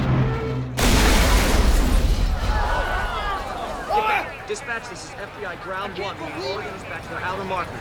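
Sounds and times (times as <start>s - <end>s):
explosion of a fireball bursting through an aircraft's nose on the tarmac: 0.8s - 3.5s
crackling debris and rumble: 0.8s - 3.9s
speech: 4.5s - 7.7s.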